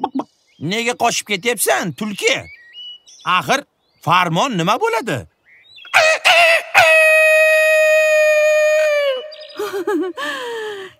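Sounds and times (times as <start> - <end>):
speech: 0.6 - 2.6, 3.2 - 5.3
rooster crowing: 5.9 - 9.1.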